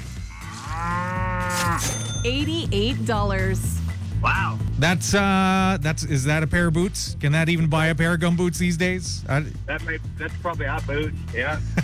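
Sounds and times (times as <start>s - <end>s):
cow mooing as it is brought out of the barn: 0.0s - 2.1s
speech: 1.8s - 11.8s.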